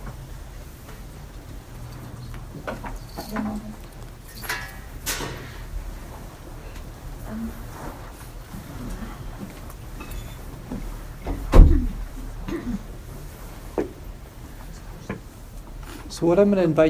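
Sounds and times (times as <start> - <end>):
door being eased open: 1.6 - 12.6
clunk of door latch: 11.2 - 12.2
speech: 16.2 - 16.8.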